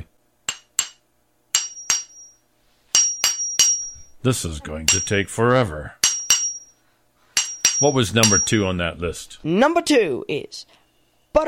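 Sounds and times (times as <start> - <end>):
hammer striking a metal chisel: 0.5 - 2.4, 3.0 - 4.1, 4.9 - 5.2, 6.0 - 6.7, 7.4 - 8.7
speech: 4.2 - 6.0, 7.8 - 10.8.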